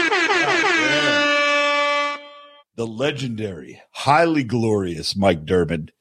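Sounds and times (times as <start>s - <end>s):
air horn sound effect blasts: 0.0s - 2.7s
speech: 2.8s - 5.9s.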